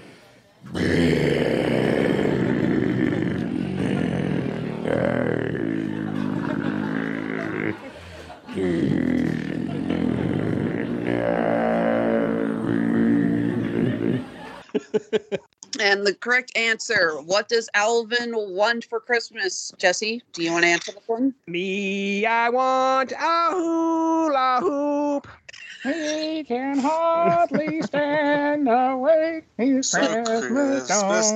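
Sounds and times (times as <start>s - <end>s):
slowed-down record with singing voices in deep growling tones: 0.7s - 14.6s, 21.5s - 31.3s
laughter: 2.4s - 15.5s, 25.5s - 28.6s
speech: 16.2s - 31.3s.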